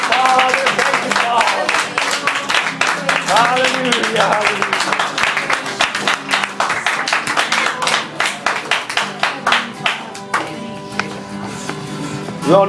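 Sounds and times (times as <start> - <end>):
church congregation clapping hands in praise: 0.0 - 11.2
speech: 12.5 - 12.6.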